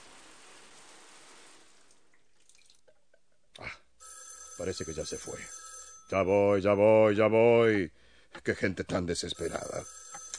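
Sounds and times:
telephone ringing with a bright electronic tone: 4.0s - 6.5s, 9.4s - 10.3s
speech: 4.6s - 10.0s.

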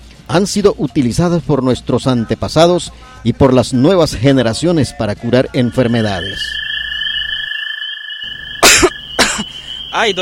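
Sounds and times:
speech: 0.3s - 6.6s, 10.0s - 10.1s
steady high-pitched electronic whine: 3.6s - 10.1s
sharp loud coughs: 8.6s - 9.6s.

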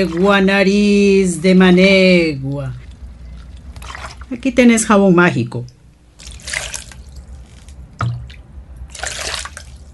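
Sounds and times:
water poured over a girl in a bucket splashing onto a dirt floor: 0.0s - 0.7s, 2.4s - 4.6s, 5.7s - 9.9s
speech: 0.0s - 2.8s, 4.3s - 5.8s.

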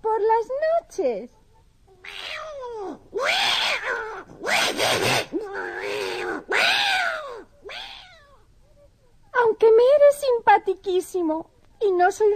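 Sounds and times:
speech: 0.4s - 1.4s, 9.6s - 12.3s
cat meowing: 2.0s - 8.4s.

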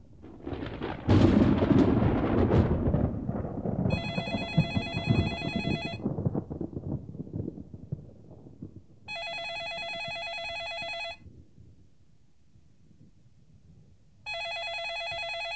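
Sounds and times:
rumble of thunder from a storm: 0.0s - 14.3s
telephone ringing: 3.9s - 6.0s, 9.1s - 11.2s, 14.3s - 15.5s.

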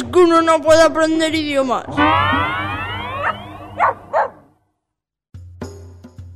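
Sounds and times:
speech: 0.2s - 2.7s
sweeping whistly tones: 1.9s - 4.3s
dog barking: 3.1s - 4.5s.

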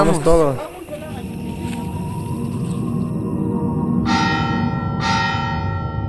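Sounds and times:
speech: 0.0s - 0.7s
church bells ringing: 0.0s - 6.0s
faint chime: 0.7s - 6.0s
low rumbling background: 1.2s - 6.0s.

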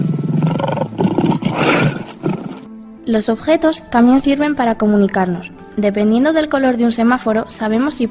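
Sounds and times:
lion roaring: 0.0s - 2.7s
speech: 3.1s - 8.1s.

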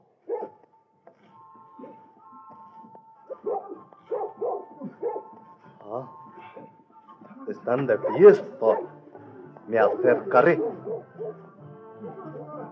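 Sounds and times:
dog barking and yipping: 0.3s - 0.6s, 3.3s - 5.3s, 7.9s - 8.9s, 10.4s - 11.4s
speech: 7.6s - 8.9s, 9.7s - 10.9s.

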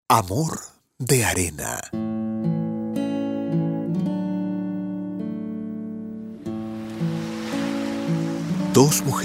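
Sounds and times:
speech: 0.1s - 2.0s, 8.8s - 9.2s
sustained melodic music: 2.0s - 9.2s
ocean waves: 6.2s - 9.2s.

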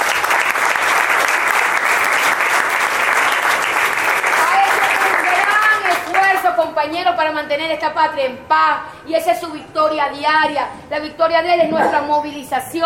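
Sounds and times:
large audience applauding at a birthday: 0.0s - 6.4s
speech: 6.7s - 12.8s.

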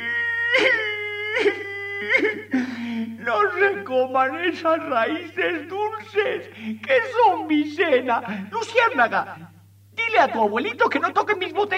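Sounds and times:
person wailing and sobbing: 0.0s - 3.7s
speech: 0.6s - 0.8s, 1.4s - 9.5s, 10.1s - 11.7s.

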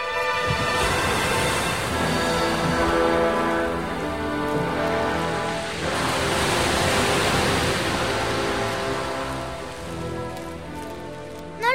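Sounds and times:
sea waves rushing: 0.0s - 11.7s.

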